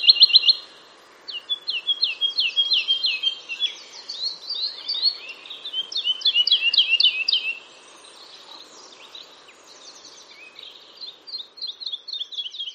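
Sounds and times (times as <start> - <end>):
woodlark singing clear fluty whistled phrases: 0.0 - 0.6, 1.3 - 7.6.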